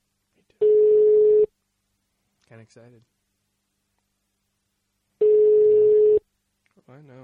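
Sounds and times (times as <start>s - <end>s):
ringback tone of an outgoing phone call: 0.6s - 1.5s, 5.2s - 6.2s
speech: 2.6s - 3.2s, 6.9s - 7.2s.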